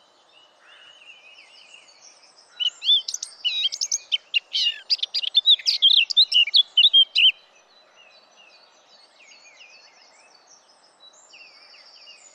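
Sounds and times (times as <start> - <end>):
Eurasian blackcap Sylvia atricapilla singing a varied warble: 2.6 - 7.4.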